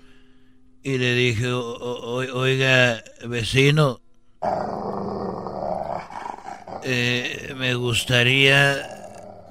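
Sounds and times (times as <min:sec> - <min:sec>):
speech: 0:00.8 - 0:04.7, 0:06.9 - 0:08.9
flat-faced fighting dog growling: 0:04.4 - 0:07.5, 0:08.6 - 0:09.4.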